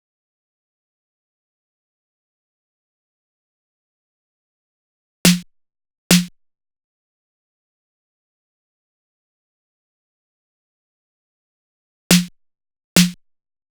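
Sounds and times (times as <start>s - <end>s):
footwork drum loop with snare: 6.1s - 6.3s, 12.1s - 12.3s.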